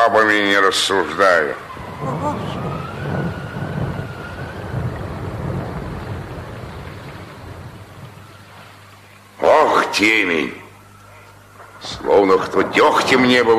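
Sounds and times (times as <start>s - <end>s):
heavy driving rain: 0.0s - 13.5s
speech: 0.1s - 3.4s, 10.0s - 10.6s, 11.8s - 13.5s
gusting wind: 0.4s - 9.0s, 11.4s - 13.5s.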